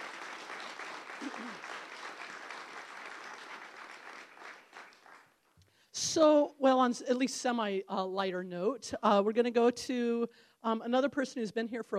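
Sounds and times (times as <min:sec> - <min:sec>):
crowd applauding: 0:00.0 - 0:05.4
speech: 0:01.2 - 0:01.9, 0:06.1 - 0:11.9.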